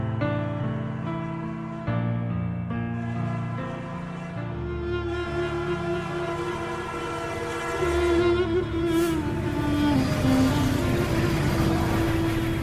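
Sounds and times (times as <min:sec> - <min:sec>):
train rumbling past: 0:00.2 - 0:12.6
train horn in long sustained blasts: 0:03.0 - 0:12.4.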